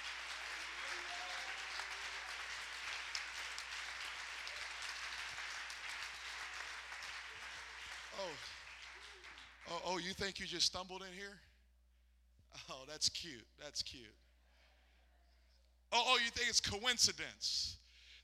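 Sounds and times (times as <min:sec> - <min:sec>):
large audience clapping hands: 0:00.0 - 0:10.0
speech: 0:08.2 - 0:08.6, 0:09.7 - 0:11.5, 0:12.5 - 0:14.2, 0:15.9 - 0:18.2.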